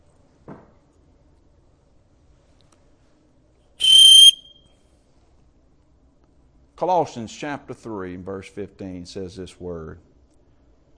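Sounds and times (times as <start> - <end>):
small whistle giving one sharp shrill blast: 3.8 - 4.7
speech: 6.8 - 10.1.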